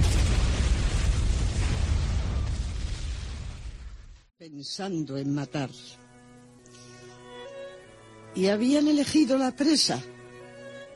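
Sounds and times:
car bomb explosion roaring: 0.0 - 4.3
speech: 4.5 - 6.0, 8.4 - 10.1.

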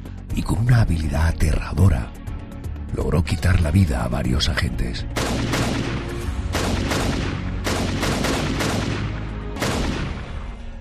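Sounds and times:
speech: 0.4 - 2.2, 2.9 - 5.9
gunfire: 5.2 - 10.6.

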